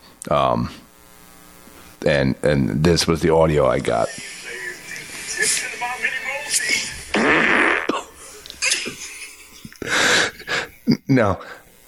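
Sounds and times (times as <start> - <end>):
speech: 0.2 - 0.9, 2.0 - 4.4, 10.9 - 11.6
laughter: 3.8 - 11.3
loud exaggerated cartoonish fart sounds: 7.1 - 9.0.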